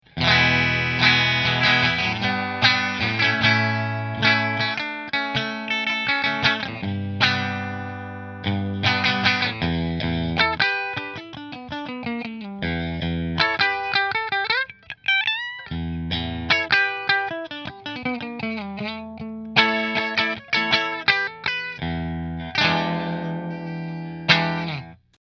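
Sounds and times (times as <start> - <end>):
Gibson Melody Maker Fender guitar: 0.0 - 25.2.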